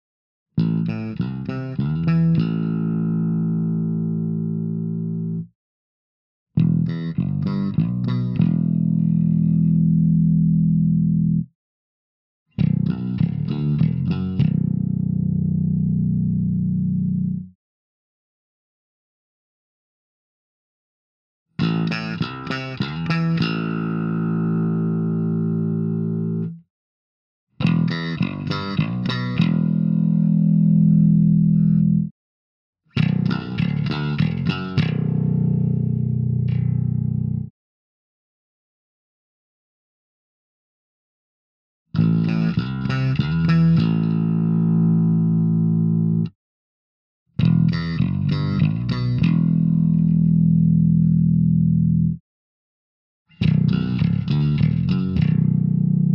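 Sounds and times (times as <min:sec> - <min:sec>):
Washburn RB 2500 Custom Modified guitar played with fingers: 0:00.6 - 0:05.4, 0:06.6 - 0:11.4, 0:12.6 - 0:17.4, 0:21.6 - 0:26.6, 0:27.6 - 0:32.1, 0:32.9 - 0:37.5, 0:42.0 - 0:46.3, 0:47.4 - 0:52.2, 0:53.4 - 0:56.1.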